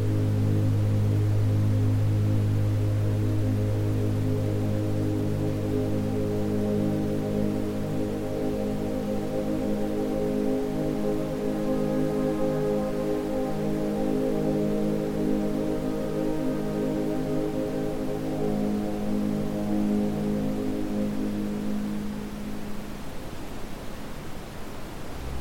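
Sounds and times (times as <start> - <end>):
layered low ambient drone tones: 0.0 - 22.7
brown noise rumble: 0.0 - 25.4.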